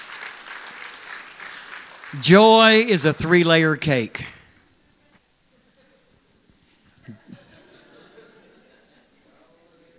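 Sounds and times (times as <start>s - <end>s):
audience applause for a tech team: 0.0s - 3.8s
speech: 2.1s - 4.4s.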